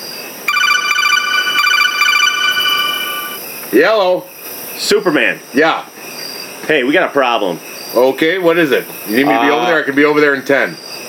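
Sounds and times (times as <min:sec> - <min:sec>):
telephone ringing on an outgoing call with an electronic trill: 0:00.5 - 0:03.4
speech: 0:03.7 - 0:06.0, 0:06.7 - 0:10.8.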